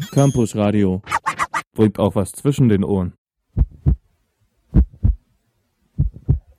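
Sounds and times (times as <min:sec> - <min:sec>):
speech: 0:00.1 - 0:01.1, 0:01.8 - 0:03.7
pounding heartbeat: 0:03.5 - 0:04.1, 0:04.7 - 0:05.3, 0:05.9 - 0:06.5.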